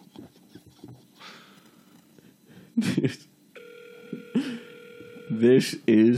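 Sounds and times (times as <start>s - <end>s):
speech: 2.8s - 3.3s, 5.4s - 6.1s
electronic ringback tone of an outgoing long-distance phone call: 3.6s - 5.5s.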